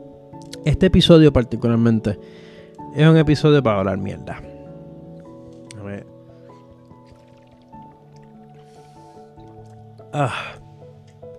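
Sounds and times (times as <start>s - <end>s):
speech: 0.0s - 4.5s, 10.1s - 10.6s
person slurping and gulping a sip of water: 6.5s - 10.1s.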